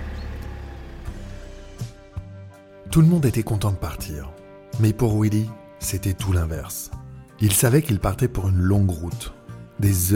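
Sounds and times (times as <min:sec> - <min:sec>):
car engine rumbling: 0:00.0 - 0:02.6
speech: 0:02.9 - 0:10.1.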